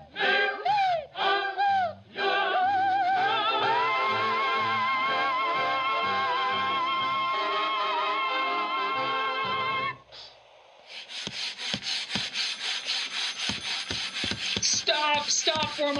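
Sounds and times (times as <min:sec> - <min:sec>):
music: 0:00.0 - 0:10.2
sandpaper rasping back and forth on wood: 0:10.9 - 0:15.9
speech: 0:15.6 - 0:15.9.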